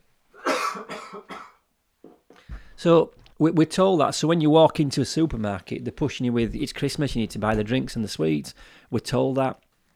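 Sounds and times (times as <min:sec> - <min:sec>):
harsh raspy coughs: 0:00.4 - 0:02.2
speech: 0:02.8 - 0:09.6.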